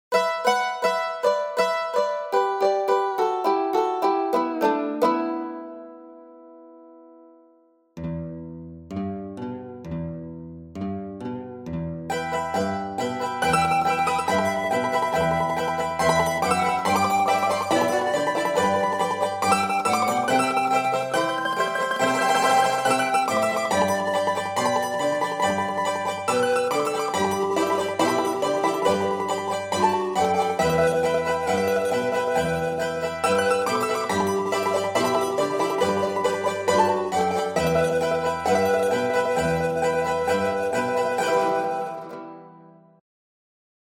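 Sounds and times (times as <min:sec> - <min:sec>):
virtual charango emulated from mandolin with strum-like effect: 0:00.1 - 0:07.1, 0:08.0 - 0:43.0
virtual quena flute: 0:12.1 - 0:42.5.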